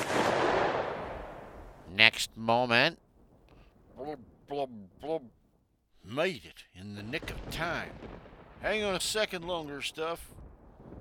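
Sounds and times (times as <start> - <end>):
muffled pistol gunshot fired to break a rope: 0.0 - 1.6
speech: 2.0 - 3.0, 4.0 - 5.4, 6.0 - 10.4.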